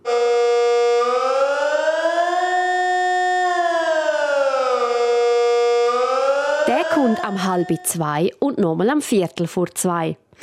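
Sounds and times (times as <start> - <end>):
civil defense general alarm siren wailing during a test: 0.0 - 8.3
speech: 6.9 - 10.4.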